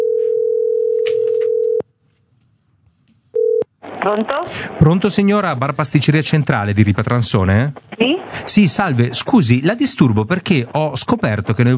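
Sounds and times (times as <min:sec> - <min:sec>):
ringback tone of an outgoing telephone call: 0:00.0 - 0:01.8, 0:03.4 - 0:03.7
speech: 0:04.0 - 0:11.7.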